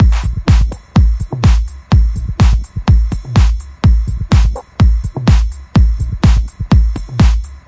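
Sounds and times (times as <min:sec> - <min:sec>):
hard kick drums: 0:00.0 - 0:07.6
hi-hats: 0:00.0 - 0:07.6
noise: 0:00.0 - 0:07.6
panned toms: 0:00.0 - 0:07.6.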